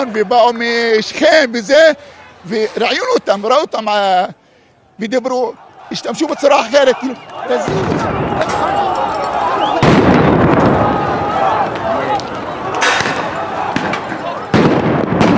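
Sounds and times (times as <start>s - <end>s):
speech: 0.0s - 4.4s, 5.0s - 9.0s
crowd noise: 0.0s - 15.3s
voices shouting: 0.0s - 15.3s
stun grenade explosions in the street: 7.6s - 11.2s, 12.8s - 15.3s.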